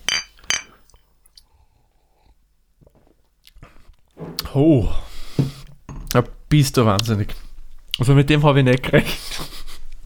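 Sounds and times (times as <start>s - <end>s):
beer glasses clinking in a toast: 0.0s - 0.8s
quiet shuffling: 4.2s - 5.7s
speech: 4.5s - 5.0s, 6.2s - 9.5s.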